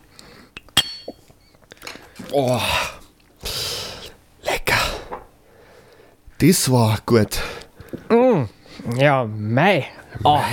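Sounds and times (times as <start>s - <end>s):
two glasses of foamy beer clinking in a toast: 0.6s - 1.3s
speech: 2.3s - 2.9s, 6.4s - 8.2s, 8.9s - 10.5s.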